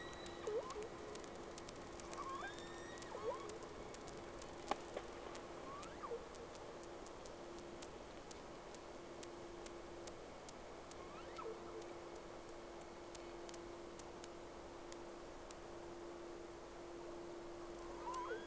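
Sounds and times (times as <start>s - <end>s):
whale calls as upswept whistles and chirps: 0.0s - 0.9s, 2.2s - 3.6s, 5.7s - 6.2s, 11.0s - 11.9s, 17.9s - 18.4s
scattered clicks: 0.0s - 15.6s, 17.7s - 18.4s
constant low hum: 0.0s - 18.4s.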